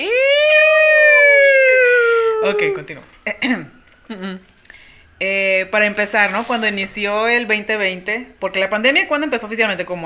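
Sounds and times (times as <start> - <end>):
siren wailing outside: 0.0 - 6.2
speech: 2.4 - 4.5, 5.2 - 10.0.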